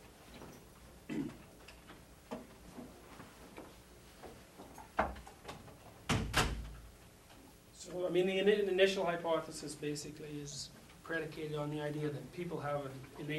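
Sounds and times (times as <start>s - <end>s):
door being pushed shut: 6.1s - 6.8s
speech: 7.9s - 13.3s.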